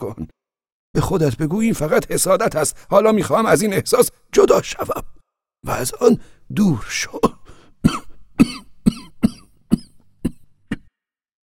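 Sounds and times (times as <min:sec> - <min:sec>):
speech: 0:01.0 - 0:08.6
long wet phlegmy coughing fit rattling with congestion: 0:07.1 - 0:10.9.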